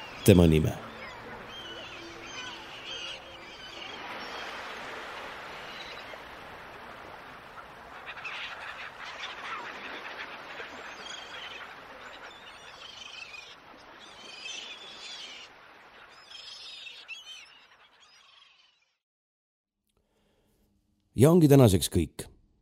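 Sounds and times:
sea waves lapping: 0.0s - 17.9s
seagulls crying and squawking: 0.0s - 18.6s
speech: 0.2s - 0.8s, 21.2s - 22.3s.

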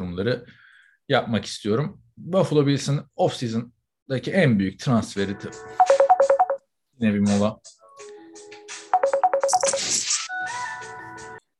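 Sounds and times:
speech: 0.2s - 5.9s, 7.0s - 7.8s
phone ringtone of electronic beeps and melodic tones: 5.7s - 6.6s, 8.9s - 9.9s.

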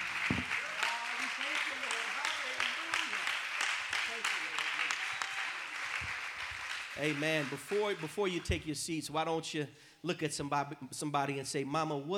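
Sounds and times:
people calling out and cheering: 0.0s - 8.6s
audience applauding: 0.0s - 8.7s
speech: 7.0s - 12.1s.

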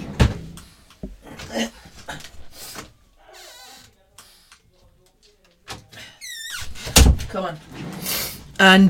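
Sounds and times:
speech: 1.5s - 2.3s, 7.3s - 7.8s, 8.6s - 8.8s
door thumping and rattling open to let a dog in: 6.6s - 7.4s.

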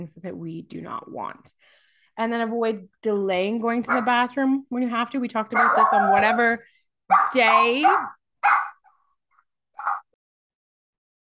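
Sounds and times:
speech: 0.0s - 8.6s
adolescent female dog barking and yelping: 3.9s - 4.2s, 5.5s - 8.9s, 9.8s - 10.1s.

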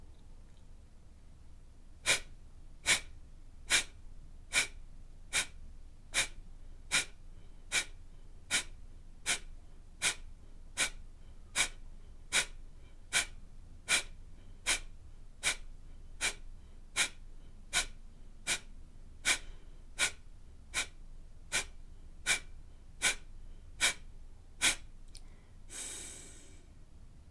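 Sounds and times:
kapalabhati rapid forceful nasal breathing exhalations: 2.0s - 3.1s, 3.7s - 5.6s, 6.2s - 10.2s, 11.6s - 15.6s, 16.2s - 16.4s, 17.0s - 24.0s, 24.6s - 26.7s.

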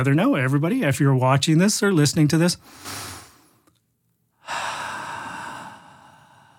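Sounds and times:
speech: 0.0s - 3.2s
big deep breath taken as a calming group exercise: 2.6s - 3.6s, 4.4s - 6.5s.

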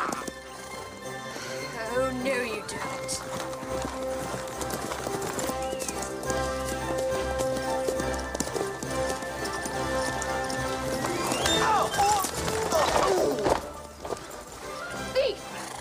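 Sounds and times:
horse neighing in an orchard: 0.0s - 0.4s, 11.0s - 13.5s
horse hooves clip-clopping in an orchard: 0.0s - 15.7s
scuffling: 2.9s - 15.0s.

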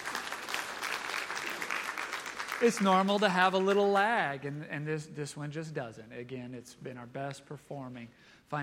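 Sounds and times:
audience applause: 0.0s - 4.2s
speech: 2.6s - 8.6s.

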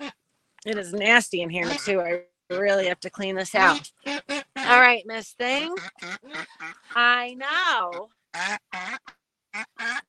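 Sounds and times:
duck sitting on eggs quacking harshly: 0.0s - 0.2s, 1.6s - 2.9s, 3.6s - 10.0s
speech: 0.6s - 4.0s, 4.7s - 10.0s.

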